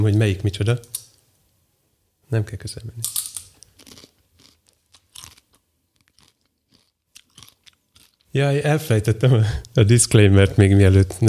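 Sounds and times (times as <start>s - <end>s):
speech: 0.0s - 1.0s, 2.3s - 3.3s, 8.4s - 11.2s
crisp food being chewed: 3.6s - 8.3s.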